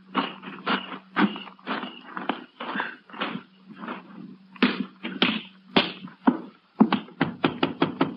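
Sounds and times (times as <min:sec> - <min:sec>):
low constant hum: 0:00.0 - 0:08.1
sharp knocks on the front door of a house: 0:06.8 - 0:08.1.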